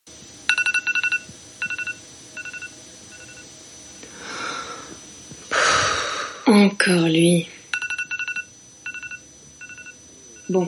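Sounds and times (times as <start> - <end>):
faint steady hum: 0.0 - 10.6
alarm clock beeping: 0.5 - 3.5, 7.7 - 10.6
speech: 6.5 - 7.6, 10.5 - 10.6.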